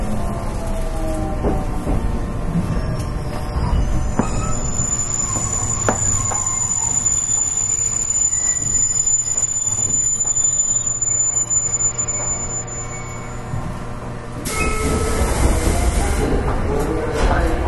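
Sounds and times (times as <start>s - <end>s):
electric train wheels rumbling on rails at speed: 0.0s - 12.6s, 13.2s - 17.6s
faint high whine of an electric train: 2.9s - 13.8s.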